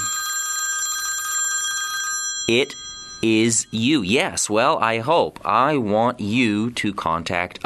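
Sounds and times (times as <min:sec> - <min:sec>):
telephone ringing with an electronic trill: 0:00.0 - 0:04.0
speech: 0:02.5 - 0:07.6.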